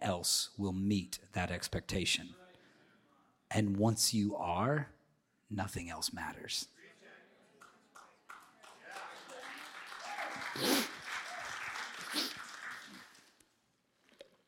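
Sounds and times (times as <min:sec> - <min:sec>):
speech: 0:00.0 - 0:02.4, 0:03.5 - 0:06.8
audience applause: 0:07.6 - 0:13.4.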